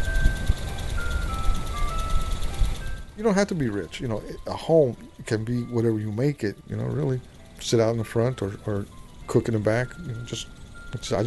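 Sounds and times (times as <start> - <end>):
ice cream truck jingle: 0.0 - 11.2
speech: 3.2 - 11.2.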